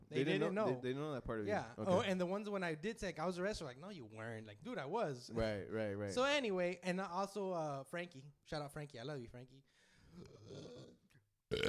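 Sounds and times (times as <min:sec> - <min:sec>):
speech: 0:00.2 - 0:10.9
low rumbling burp: 0:10.2 - 0:11.6.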